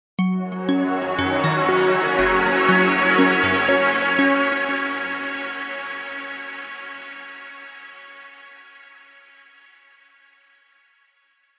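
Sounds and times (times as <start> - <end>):
warm positive arpeggiated multimedia musical logo ident: 0.2 - 7.8.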